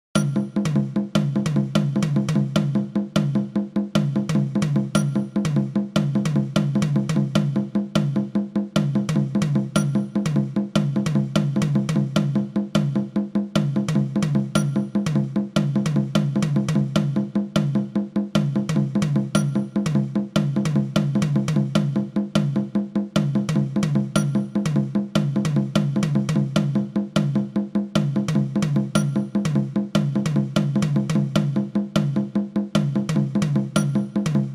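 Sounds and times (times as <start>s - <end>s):
long bar with polyrhythm and normal rhythms: 0.2s - 34.5s.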